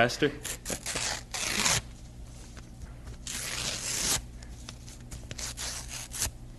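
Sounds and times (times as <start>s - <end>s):
sheet of paper note being torn up: 0.4s - 1.9s, 3.2s - 4.3s, 4.9s - 6.4s.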